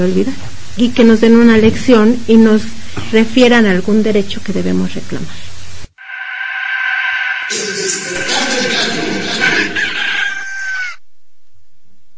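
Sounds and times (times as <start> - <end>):
speech: 0.0 - 5.5
rooster crowing: 6.0 - 11.0
rough clucking and cackling: 8.5 - 11.0.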